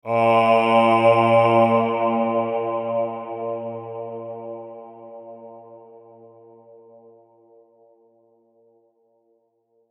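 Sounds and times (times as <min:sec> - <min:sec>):
pure space vocal: 0:00.0 - 0:05.6.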